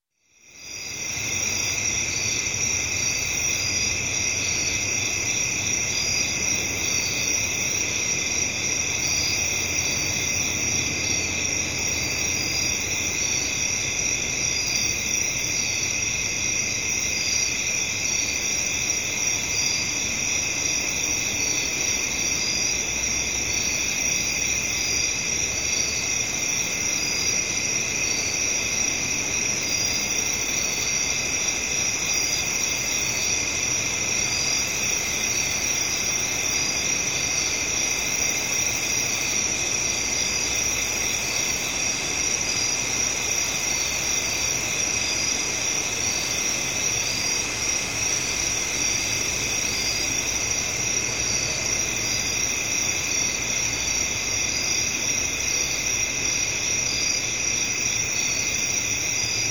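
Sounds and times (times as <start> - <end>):
crickets at night in a residential area: 0.0 - 59.4.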